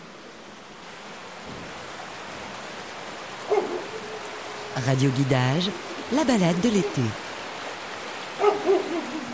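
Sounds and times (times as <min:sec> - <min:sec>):
stream water flowing: 0:00.0 - 0:09.3
neighbour's dog barking: 0:03.5 - 0:03.9, 0:08.4 - 0:09.2
speech: 0:04.8 - 0:07.3.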